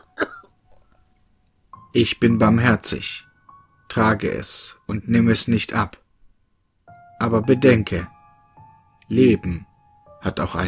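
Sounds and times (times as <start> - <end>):
person coughing: 0.0 - 0.6
faint room noise: 0.0 - 10.6
speech: 2.0 - 3.3, 3.9 - 6.0, 7.2 - 8.1, 9.1 - 10.6.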